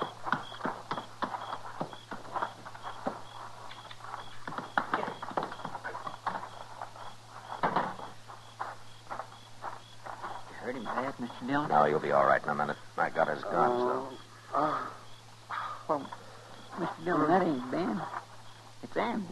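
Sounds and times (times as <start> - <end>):
horse hooves clip-clopping at a walking pace: 0.0 - 12.2
low steady hum: 0.0 - 19.2
speech: 11.5 - 14.9, 16.8 - 18.2, 18.9 - 19.2.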